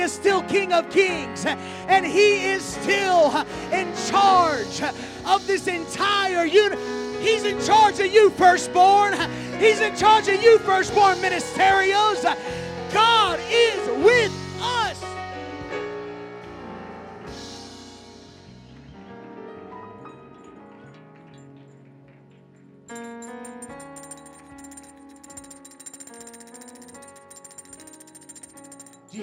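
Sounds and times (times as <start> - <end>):
speech: 0.0 - 14.4
bells ringing in overlapping resonant peals: 22.9 - 29.2.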